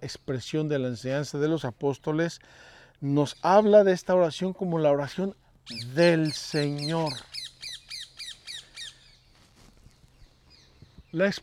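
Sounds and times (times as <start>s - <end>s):
speech: 0.0s - 7.4s, 11.1s - 11.4s
parrot squawking: 5.7s - 9.0s.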